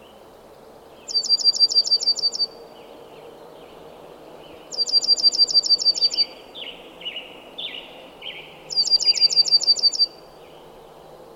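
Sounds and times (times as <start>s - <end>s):
bird song: 0.0s - 11.3s
steady soft background noise: 0.0s - 11.3s.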